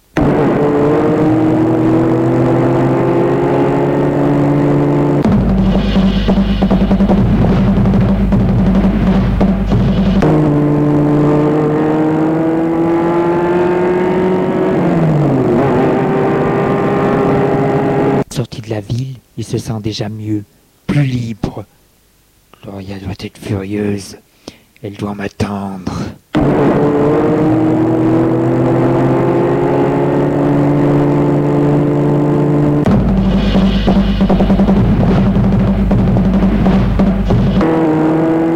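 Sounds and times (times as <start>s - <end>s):
car engine humming while driving onto ring road: 0.0s - 18.2s, 26.3s - 38.5s
speech: 19.5s - 21.7s, 23.2s - 24.2s, 24.8s - 25.6s.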